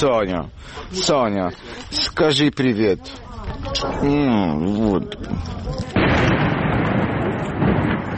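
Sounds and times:
speech: 0:00.0 - 0:06.6
distant explosion boom with rumbling roar: 0:06.0 - 0:08.1.

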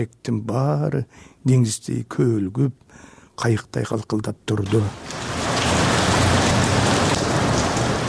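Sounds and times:
speech: 0:00.0 - 0:05.4
pouring rain: 0:04.6 - 0:08.0.

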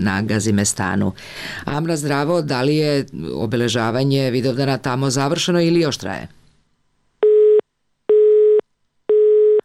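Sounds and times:
speech: 0:00.0 - 0:06.4
telephone busy tone beeps after dropped call: 0:07.2 - 0:09.6.

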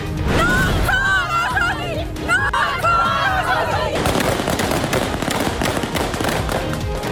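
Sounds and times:
crowd shouting and chanting: 0:00.5 - 0:04.3
gunshots fired into the air: 0:04.0 - 0:07.0.

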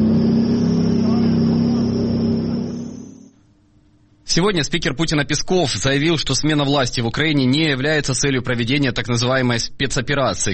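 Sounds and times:
heavy tank engines rumbling and revving: 0:00.0 - 0:03.4
speech: 0:04.4 - 0:10.5.

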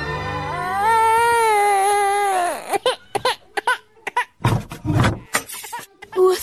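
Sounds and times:
sick baby crying: 0:00.2 - 0:04.4, 0:05.2 - 0:06.3.

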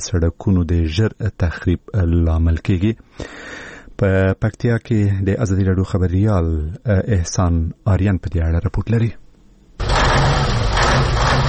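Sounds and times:
speech: 0:00.0 - 0:09.2
truck overloaded with cement driving with engine running: 0:09.8 - 0:11.4.

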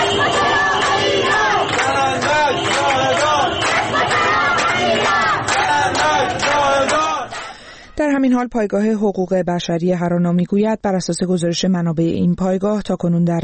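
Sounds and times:
protesters shouting and chanting at a street protest in Ahvaz: 0:00.0 - 0:07.5
speech: 0:08.2 - 0:13.4.

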